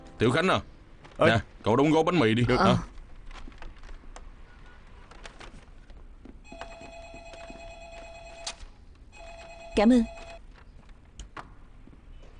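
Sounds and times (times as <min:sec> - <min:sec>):
speech: 0:00.2 - 0:02.9, 0:09.8 - 0:10.2
telephone ringing with a steady electronic tone: 0:06.5 - 0:10.4.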